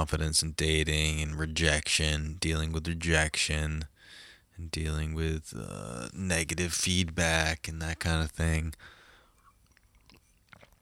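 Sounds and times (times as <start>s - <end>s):
speech: 0.0s - 9.0s
sipping coffee: 8.8s - 10.8s
swallowing noises and small mouth clicks: 8.8s - 10.8s.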